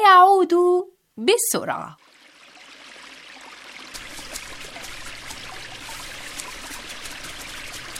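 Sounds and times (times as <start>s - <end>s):
speech: 0.4s - 2.1s
water flowing and trickling at a pond: 1.9s - 7.9s.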